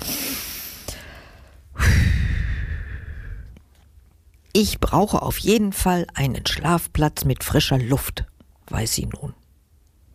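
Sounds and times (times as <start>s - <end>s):
deep breath in and out: 0.0s - 3.6s
speech: 4.6s - 9.4s.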